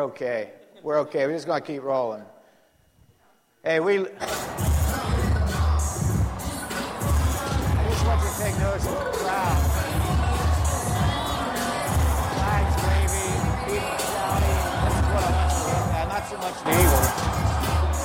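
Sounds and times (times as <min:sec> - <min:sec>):
speech: 0:00.0 - 0:02.4, 0:03.6 - 0:04.7, 0:08.5 - 0:09.6, 0:16.2 - 0:17.5
crowd cheering and shouting: 0:04.2 - 0:18.0.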